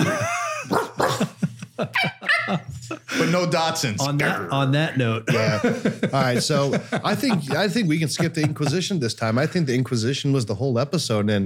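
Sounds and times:
laughter: 0.0 - 4.0, 5.2 - 9.8
dog barking sharply: 0.7 - 1.3
speech: 1.8 - 11.4.

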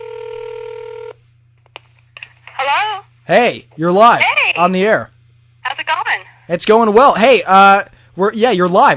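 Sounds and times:
electronic ringback tone on a phone line on an outgoing call: 0.0 - 1.2
speech: 2.7 - 5.1, 6.5 - 8.9.

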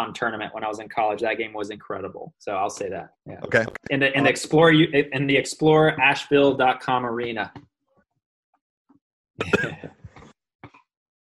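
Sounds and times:
speech: 0.0 - 7.7, 9.4 - 9.9
person coughing: 9.4 - 10.1
throat clearing: 9.4 - 10.2.

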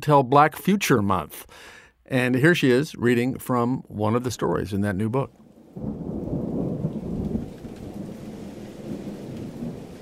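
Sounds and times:
speech: 0.0 - 6.2
deep thunder rumbling: 5.3 - 10.0
heavy rain pouring in a thunderstorm: 5.3 - 10.0.

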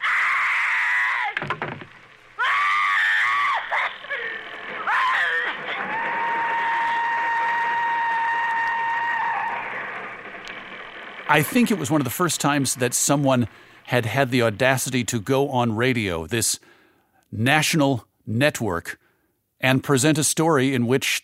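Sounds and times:
woman screaming: 0.0 - 1.4, 2.4 - 9.7
speech: 11.3 - 16.7, 17.3 - 19.0, 19.6 - 21.2.

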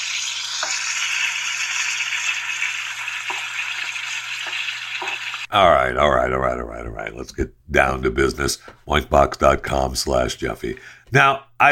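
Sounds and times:
food sizzling in a frying pan: 0.0 - 5.5
speech: 5.5 - 11.7.

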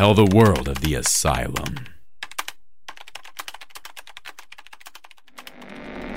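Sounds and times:
speech: 0.0 - 1.9
rapid typing on a keyboard: 0.0 - 5.6
harsh static: 5.3 - 6.1.

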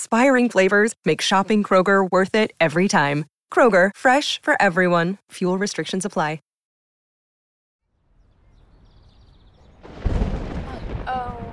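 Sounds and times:
speech: 0.0 - 6.5
faint high chirping: 8.1 - 11.5
rumbling thunder from heat lightning: 8.1 - 11.5
brief voice-like tone: 10.7 - 11.5.

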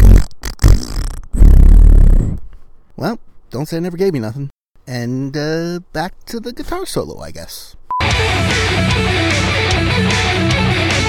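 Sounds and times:
loud buzzy fart noise: 0.0 - 2.4
speech: 3.0 - 10.5.

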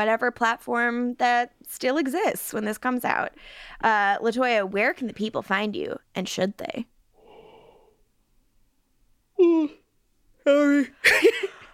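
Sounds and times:
speech: 0.0 - 6.9, 9.4 - 9.8, 10.4 - 11.6
person yawning tiredly: 9.4 - 9.9.

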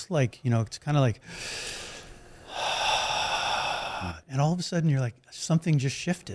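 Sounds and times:
speech: 0.0 - 1.9, 4.0 - 6.3
person imitating a deep breath: 1.2 - 4.3.

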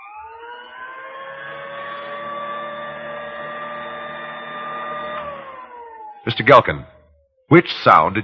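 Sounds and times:
old-style vacuum sweeper motor running while standing in place: 0.0 - 6.6
speech: 6.2 - 8.2.

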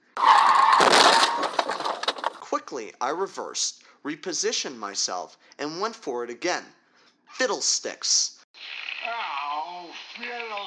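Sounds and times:
car crashing headfirst into a parked car: 0.2 - 2.4
glass breaking: 0.2 - 2.4
crash debris scattering and tinkling: 0.4 - 2.4
speech: 2.7 - 10.6.

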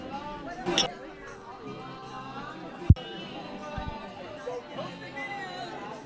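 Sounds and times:
dense crowd chatter at a wedding reception: 0.0 - 6.0
glassware clinking: 0.7 - 0.9.

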